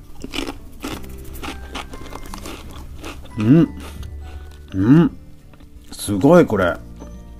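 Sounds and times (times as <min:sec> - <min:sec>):
crunching asparagus-flavoured stacked potato chips: 0:00.0 - 0:04.8
soft chewing: 0:00.0 - 0:06.0
speech: 0:03.4 - 0:04.0, 0:04.7 - 0:05.2, 0:05.9 - 0:06.8.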